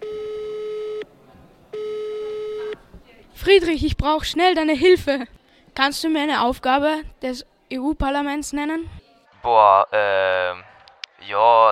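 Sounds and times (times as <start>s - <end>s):
telephone call tone during a phone-a-friend lifeline: 0.0s - 1.1s, 1.8s - 2.8s
speech: 3.4s - 11.7s.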